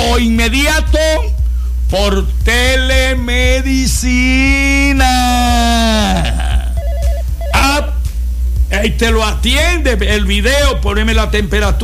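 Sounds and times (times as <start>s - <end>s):
speech: 0.2s - 1.3s, 1.9s - 6.4s, 8.8s - 11.8s
telephone ringing with a warbling electronic trill: 6.8s - 7.8s.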